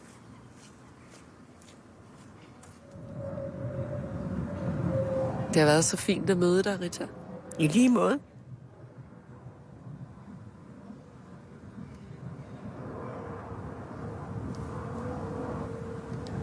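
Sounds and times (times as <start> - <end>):
low-flying airplane passing overhead: 1.4 - 16.4
speech: 5.5 - 8.3.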